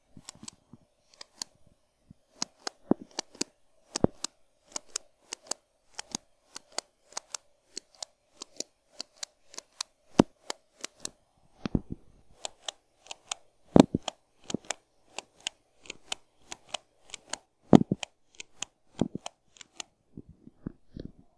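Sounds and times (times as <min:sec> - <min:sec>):
pen clicks: 0:02.4 - 0:11.8, 0:12.4 - 0:19.9.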